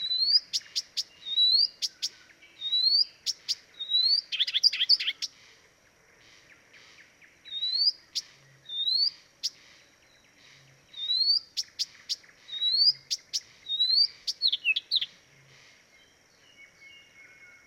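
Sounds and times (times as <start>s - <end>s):
Blyth's reed warbler Acrocephalus dumetorum song: 0.0s - 17.6s.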